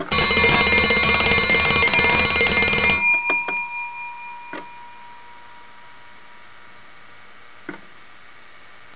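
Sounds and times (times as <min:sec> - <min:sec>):
telephone ringing: 0:00.1 - 0:06.2.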